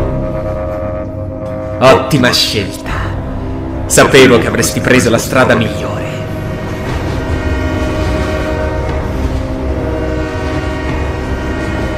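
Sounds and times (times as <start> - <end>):
train horn: 0.0 - 1.8, 6.4 - 11.9
rail noise: 0.0 - 11.9
train rumbling: 0.0 - 11.9
speech: 1.8 - 3.0, 3.9 - 6.0.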